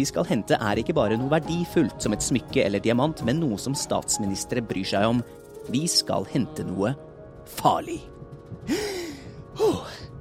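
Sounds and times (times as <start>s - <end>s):
speech: 0.0s - 8.1s, 8.7s - 9.0s
person gasping for breath: 8.6s - 9.7s.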